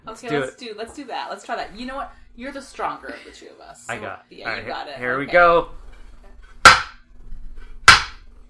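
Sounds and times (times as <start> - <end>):
speech: 0.1 - 5.8
large mallet hammering off a metal barn door lock: 6.7 - 7.0.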